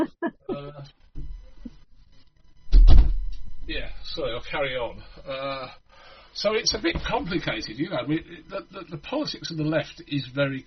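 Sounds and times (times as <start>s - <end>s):
voices: 0.0s - 0.9s, 3.7s - 10.6s
door slamming with a short rattle: 2.7s - 3.4s
speech: 4.2s - 10.6s.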